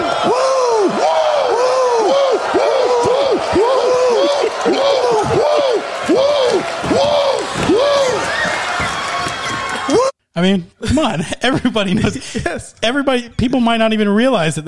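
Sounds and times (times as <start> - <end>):
large crowd at a wrestling show shouting woo: 0.0 - 10.2
speech: 10.4 - 14.6.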